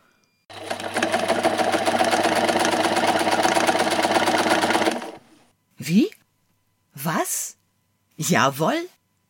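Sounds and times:
sewing machine running with needle clatter and motor hum: 0.5s - 5.3s
speech: 5.9s - 6.1s, 8.2s - 9.0s.

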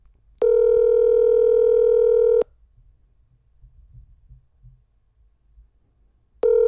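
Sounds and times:
telephone ringback tone: 0.4s - 2.4s, 6.4s - 6.6s.

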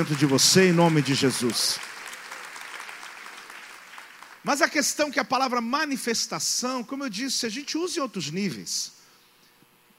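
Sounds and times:
speech: 0.0s - 1.9s, 4.4s - 9.0s
crowd clapping steadily and densely: 0.0s - 4.8s.

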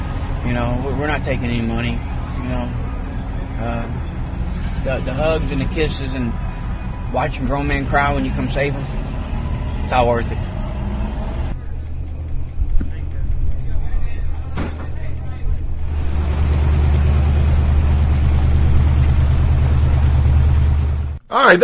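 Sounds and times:
big jacked-up truck engine rumbling as it pulls out: 0.0s - 21.6s
speech: 0.4s - 2.8s, 3.6s - 4.1s, 4.8s - 6.4s, 7.1s - 9.0s, 9.9s - 10.5s, 21.4s - 21.6s.

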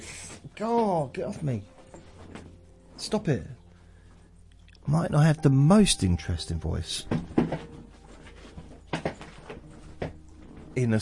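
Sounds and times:
speech: 0.6s - 1.8s, 3.0s - 3.6s, 4.8s - 7.8s, 10.8s - 11.0s
chair clicking: 7.1s - 10.8s.

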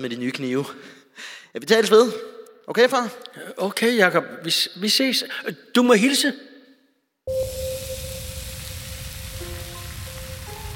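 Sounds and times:
speech: 0.0s - 6.5s
onions sizzling in a frying pan: 7.3s - 10.7s.

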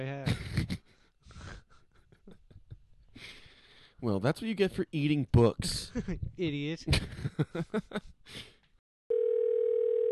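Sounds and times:
speech: 0.0s - 0.8s, 4.0s - 8.5s
phone ringing with electronic tone: 9.1s - 10.0s.

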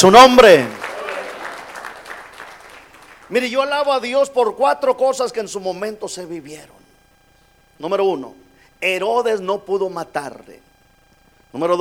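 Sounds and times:
speech: 0.0s - 0.8s, 3.3s - 6.8s, 7.8s - 10.7s, 11.5s - 11.7s
crowd applauding in a large room: 0.5s - 3.3s.

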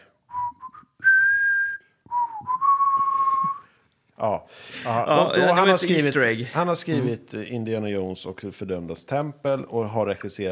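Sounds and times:
woman whistling a short melody in a car: 0.3s - 3.7s
speech: 4.2s - 10.5s.

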